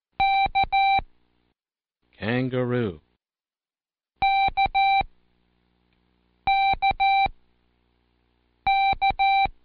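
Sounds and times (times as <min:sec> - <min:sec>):
Morse code letter K beeps on a keyer: 0:00.2 - 0:01.0, 0:04.2 - 0:05.1, 0:06.5 - 0:07.3, 0:08.7 - 0:09.6
speech: 0:02.2 - 0:03.0.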